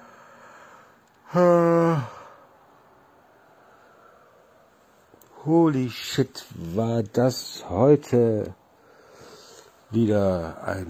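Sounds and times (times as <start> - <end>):
person yawning: 1.2 - 2.5
speech: 1.3 - 2.1, 5.4 - 8.6, 9.9 - 10.8.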